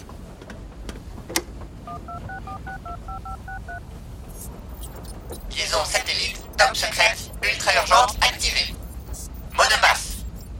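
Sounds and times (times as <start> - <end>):
low rumble: 0.0 - 10.5
telephone keypad dialing tones: 1.9 - 3.8
speech: 2.6 - 8.7.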